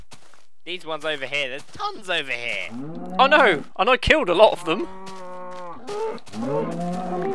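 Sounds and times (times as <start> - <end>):
speech: 0.7 - 5.1, 5.9 - 7.3
cows mooing: 2.7 - 3.6, 4.7 - 7.3.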